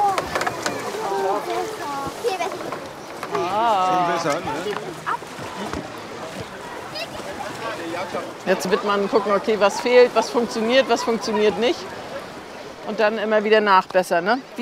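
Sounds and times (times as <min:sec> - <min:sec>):
homemade raft launched onto water, splashing: 0:00.0 - 0:14.5
speech: 0:04.2 - 0:04.9, 0:08.0 - 0:12.0, 0:12.9 - 0:14.5.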